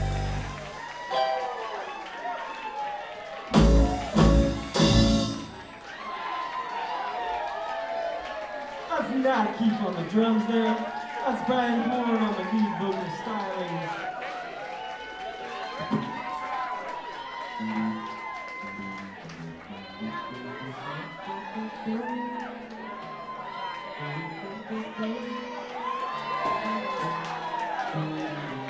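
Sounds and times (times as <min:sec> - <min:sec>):
crowd cheering and shouting: 0:00.0 - 0:28.6
speech: 0:09.3 - 0:14.1.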